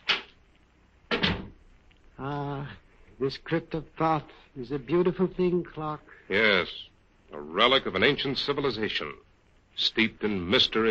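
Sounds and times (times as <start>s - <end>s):
door swinging shut into a crypt room: 1.1s - 1.6s
speech: 2.2s - 10.9s.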